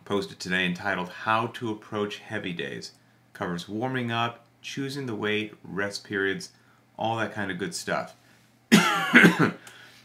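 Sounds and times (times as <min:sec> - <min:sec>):
speech: 0:00.1 - 0:09.8
sick person coughing with a cough drop in: 0:08.7 - 0:09.6.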